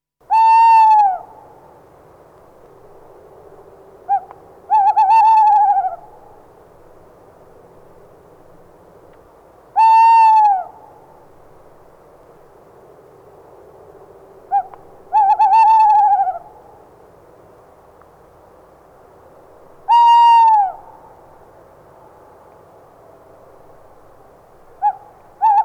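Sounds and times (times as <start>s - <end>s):
tawny owl calling: 0.3s - 1.6s, 4.1s - 6.4s, 9.8s - 11.1s, 14.5s - 16.8s, 19.8s - 21.2s, 24.8s - 25.6s.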